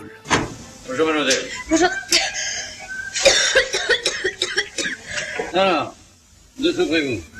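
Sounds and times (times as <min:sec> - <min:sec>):
speech: 0:00.9 - 0:02.5, 0:05.6 - 0:06.0, 0:06.6 - 0:07.3
patient with a fever coughing harshly: 0:02.1 - 0:02.5, 0:03.2 - 0:05.0.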